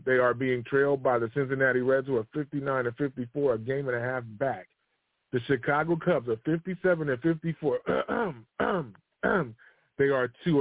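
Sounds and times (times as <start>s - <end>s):
speech: 0.0s - 10.5s
throat clearing: 7.7s - 9.7s.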